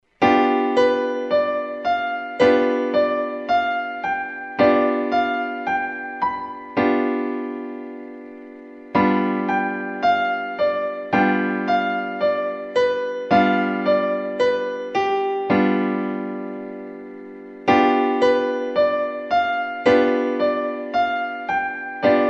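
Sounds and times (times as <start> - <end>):
G7 piano chord: 0.2 - 22.2.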